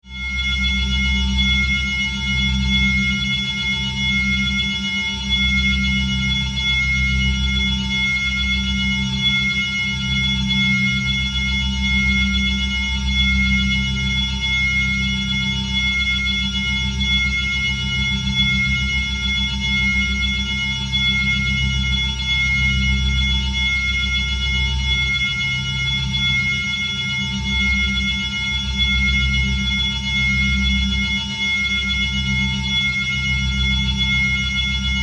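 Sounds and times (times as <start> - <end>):
high-pitched sci-fi ringing drone: 0.0 - 35.0.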